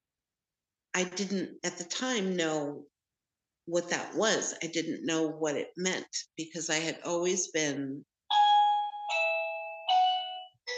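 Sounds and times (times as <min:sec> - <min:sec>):
speech: 0:01.0 - 0:02.9, 0:03.7 - 0:08.1
doorbell ringing with a melodic chime: 0:08.3 - 0:10.7.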